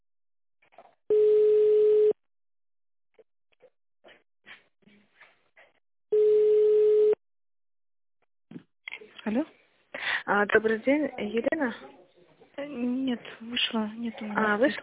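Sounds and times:
telephone ringback tone of an unanswered call: 0:01.1 - 0:02.2, 0:06.2 - 0:07.2
speech: 0:09.3 - 0:09.5, 0:10.4 - 0:12.0, 0:12.6 - 0:14.8.

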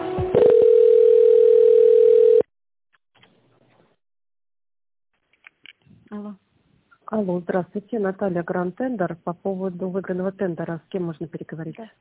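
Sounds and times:
steady single-pitch telephone line tone: 0:00.4 - 0:02.5
speech: 0:07.2 - 0:11.9.

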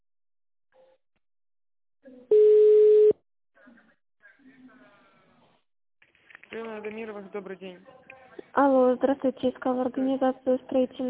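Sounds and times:
steady electronic phone line tone while waiting for operator: 0:02.3 - 0:03.2
speech: 0:06.5 - 0:11.0.

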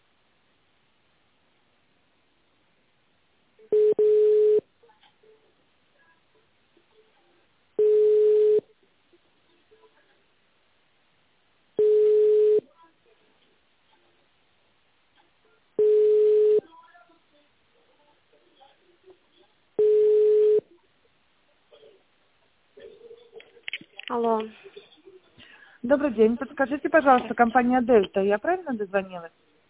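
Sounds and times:
phone ringback tone of a call to an office extension: 0:03.7 - 0:04.6, 0:07.8 - 0:08.6, 0:11.8 - 0:12.6, 0:15.8 - 0:16.6, 0:19.8 - 0:20.6
speech: 0:24.1 - 0:24.8, 0:25.8 - 0:29.4.

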